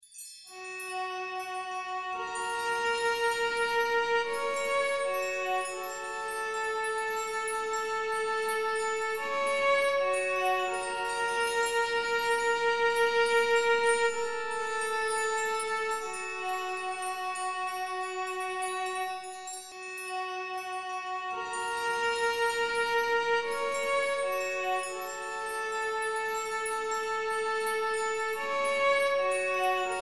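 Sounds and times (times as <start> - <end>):
cello chimes: 0.2 - 29.9.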